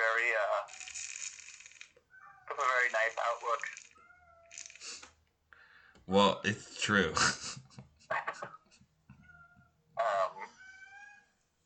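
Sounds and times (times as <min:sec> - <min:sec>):
speech: 0:00.5 - 0:01.0, 0:02.6 - 0:03.8, 0:06.1 - 0:07.5
cat meowing: 0:02.1 - 0:02.7, 0:03.9 - 0:04.6, 0:09.1 - 0:11.4.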